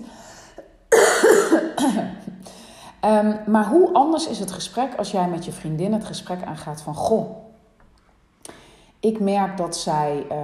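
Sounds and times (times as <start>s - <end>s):
person coughing: 0.9s - 2.4s
speech: 3.0s - 7.5s, 9.0s - 10.4s.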